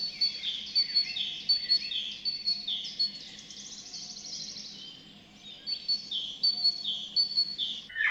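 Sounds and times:
titmouse singing: 0.0s - 3.2s, 5.7s - 7.9s.

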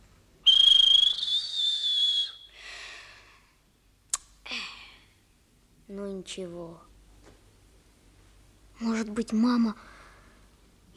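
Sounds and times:
toy whistle blowing: 0.5s - 2.6s
speech: 5.9s - 6.9s, 8.8s - 9.9s.

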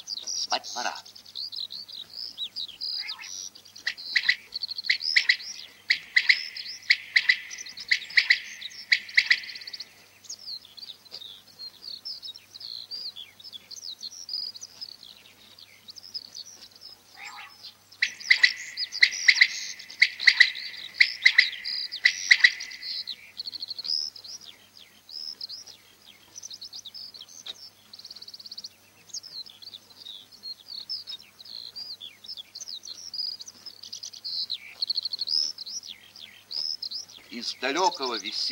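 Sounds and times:
high chirping birdsong: 0.0s - 38.5s
common quail calling from an open field: 0.3s - 1.1s, 2.9s - 10.0s, 17.1s - 24.1s, 35.4s - 38.5s
speech: 0.5s - 1.1s, 37.4s - 38.5s.

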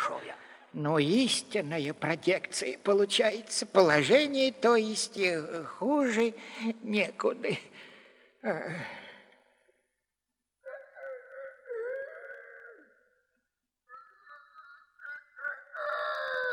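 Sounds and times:
speech: 0.7s - 9.0s
rooster crowing: 15.4s - 16.5s.

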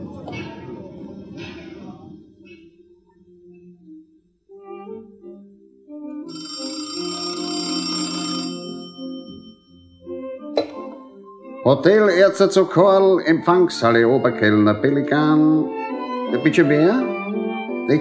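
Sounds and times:
telephone bell ringing: 6.3s - 10.2s
speech: 11.7s - 17.2s.

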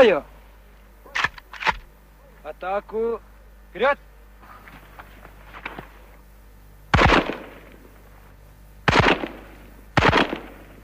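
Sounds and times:
speech: 0.0s - 0.3s, 2.5s - 4.1s
single shots from an assault rifle: 6.9s - 7.8s, 8.8s - 10.8s.

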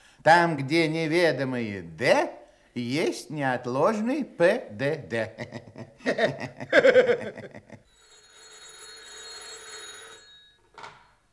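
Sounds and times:
speech: 0.2s - 7.9s
laughter: 5.2s - 7.8s
telephone bell ringing: 7.8s - 11.3s.

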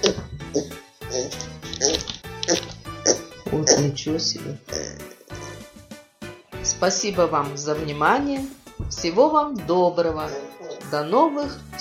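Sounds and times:
child imitating pig grunting: 0.0s - 4.0s, 4.7s - 5.2s
speech: 0.1s - 0.8s, 4.0s - 4.7s, 6.8s - 11.7s.

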